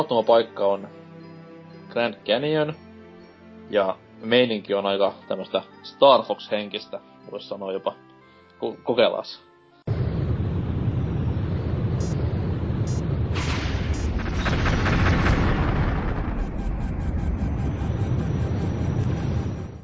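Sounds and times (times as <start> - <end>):
speech: 0.0 - 1.0, 1.9 - 2.8, 3.7 - 8.0, 8.6 - 9.5
video game explosions: 9.9 - 19.8.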